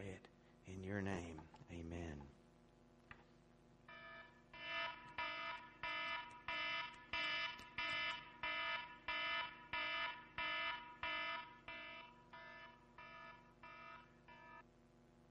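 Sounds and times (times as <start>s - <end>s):
speech: 0.0s - 2.4s
low hum: 0.0s - 15.2s
harsh electronic alarm blaring in a pulsing pattern: 3.9s - 14.6s.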